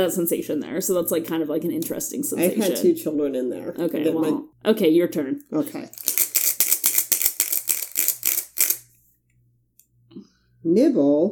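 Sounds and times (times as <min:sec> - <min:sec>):
speech: 0:00.0 - 0:06.2, 0:10.6 - 0:11.2
dice rolled during a turn in a game: 0:05.9 - 0:08.8.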